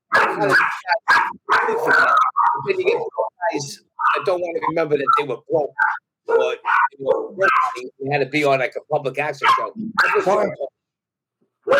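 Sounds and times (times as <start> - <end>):
dogs barking at doorbell: 0.0 - 7.9, 9.4 - 10.6
speech: 0.4 - 10.7.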